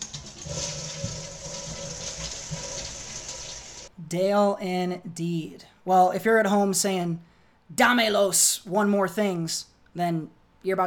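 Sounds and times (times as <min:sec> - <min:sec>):
toilet flushing: 0:00.0 - 0:03.9
speech: 0:04.1 - 0:10.8.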